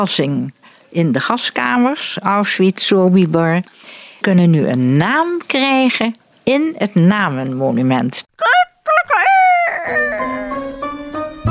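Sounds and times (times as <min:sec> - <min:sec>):
speech: 0:00.0 - 0:08.3
rooster crowing: 0:08.9 - 0:10.6.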